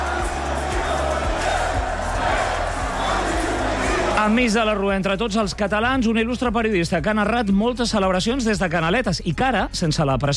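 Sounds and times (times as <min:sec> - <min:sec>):
football fans roaring and chanting at a victory parade outdoors: 0:00.0 - 0:04.9
rhythmic low thumps: 0:00.0 - 0:10.2
speech: 0:04.2 - 0:10.3.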